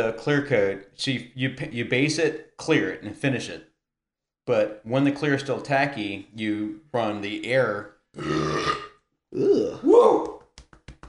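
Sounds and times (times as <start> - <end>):
speech: 0.0 - 3.7, 4.5 - 10.1
loud drawn-out guttural burping: 8.1 - 9.8.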